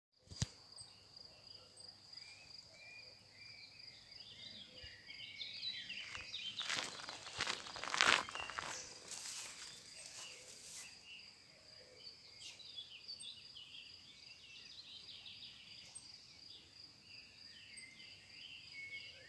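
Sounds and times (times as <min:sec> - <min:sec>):
forest ambience: 0:00.3 - 0:19.2
distant cuckoo calling in a forest: 0:05.8 - 0:10.6.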